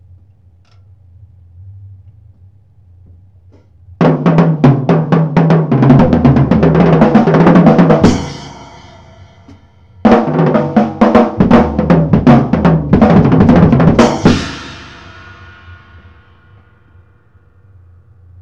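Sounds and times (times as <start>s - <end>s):
acoustic drum break: 4.0s - 16.8s.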